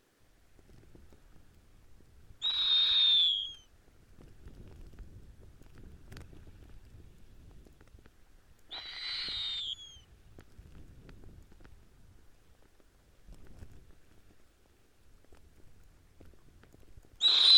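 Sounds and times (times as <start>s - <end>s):
snowy owl whistled scream: 2.4s - 3.7s, 8.7s - 10.1s, 17.2s - 17.5s.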